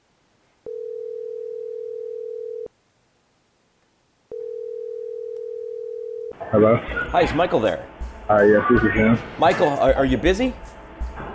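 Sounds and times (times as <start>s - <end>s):
telephone ringback tone on an outgoing call: 0.7s - 2.7s, 4.3s - 6.4s
speech: 6.4s - 10.8s.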